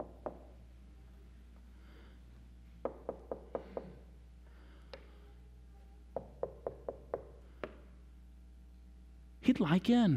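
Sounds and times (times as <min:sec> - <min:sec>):
quiet hum: 0:00.0 - 0:10.1
knocking on a door: 0:02.8 - 0:04.0, 0:06.2 - 0:07.8
speech: 0:09.5 - 0:10.1.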